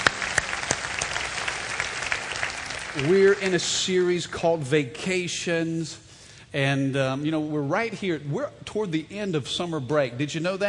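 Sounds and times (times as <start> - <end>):
church congregation clapping hands during a worship service: 0.0 - 4.2
speech: 3.0 - 10.6.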